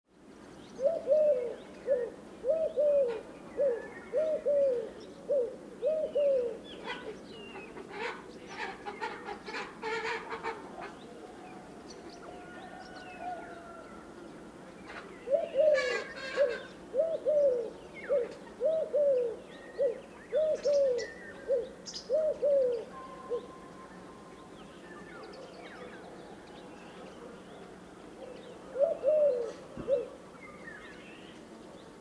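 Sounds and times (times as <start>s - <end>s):
Eurasian collared dove Streptopelia decaocto: 0.8s - 14.0s, 14.8s - 24.5s, 28.1s - 30.7s.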